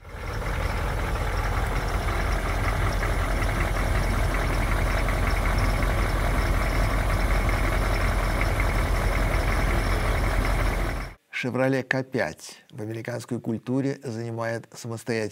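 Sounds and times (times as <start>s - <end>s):
1980 Cadillac Eldorado engine idling with low rumble: 0.0s - 11.2s
faint rhythmic ticking of idling engine: 0.0s - 11.2s
speech: 11.4s - 15.3s.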